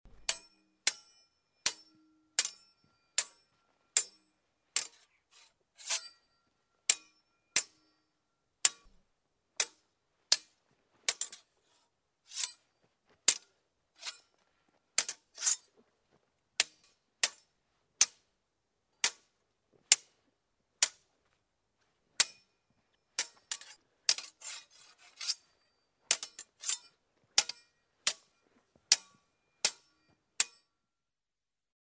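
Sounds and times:
fencing: 0:00.1 - 0:08.0, 0:08.6 - 0:09.0, 0:09.6 - 0:14.3, 0:15.0 - 0:15.8, 0:16.6 - 0:18.2, 0:19.0 - 0:19.3, 0:22.2 - 0:22.5, 0:23.1 - 0:30.8.

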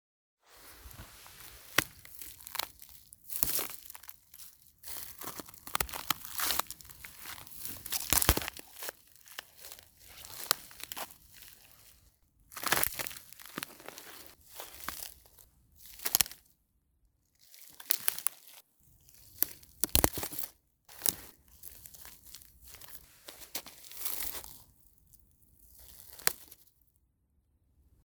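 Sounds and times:
footsteps through branches: 0:00.5 - 0:16.4, 0:19.4 - 0:24.6.

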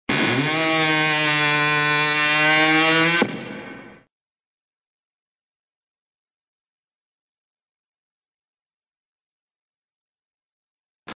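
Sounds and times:
exaggerated door creaks: 0:00.1 - 0:04.0.

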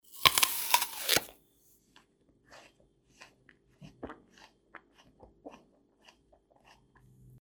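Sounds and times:
apple crunching: 0:00.0 - 0:01.3.

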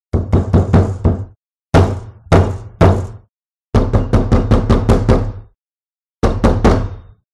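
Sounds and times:
knocking on a large wooden door: 0:00.1 - 0:05.4.

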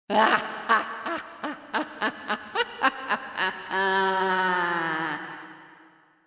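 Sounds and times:
old witch laughing for Halloween: 0:00.1 - 0:05.4.

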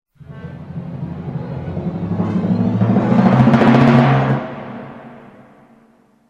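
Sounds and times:
suspense sound with drums: 0:00.2 - 0:06.0.

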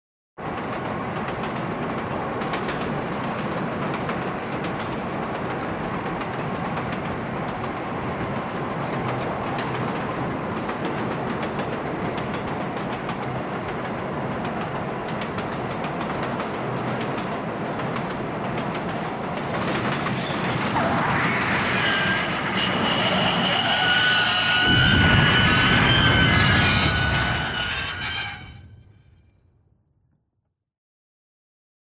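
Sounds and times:
train crashing: 0:00.5 - 0:29.0
screech of a train crash: 0:20.0 - 0:28.8.

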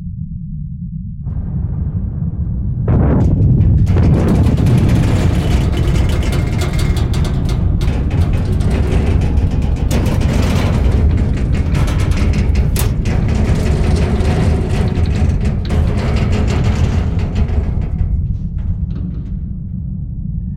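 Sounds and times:
explosions hitting a submarine: 0:01.3 - 0:04.8
metallic shaking sounds in a submarine: 0:02.9 - 0:20.5.

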